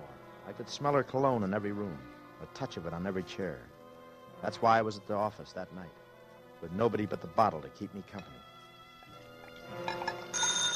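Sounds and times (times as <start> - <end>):
speech: 0.5 - 3.8, 4.4 - 6.0, 6.6 - 8.5, 9.7 - 10.4
telephone ringing in an empty office building at night: 10.2 - 10.7.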